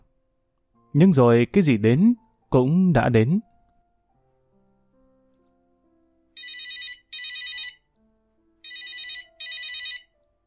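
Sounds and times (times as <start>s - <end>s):
speech: 0.9s - 3.5s
black-and-white Nokia 1110i mobile phone ringing: 6.4s - 7.9s, 8.6s - 10.2s.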